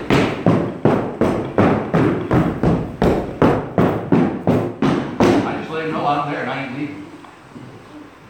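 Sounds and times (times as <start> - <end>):
heavy feet stomping on a floor: 0.0 - 5.8.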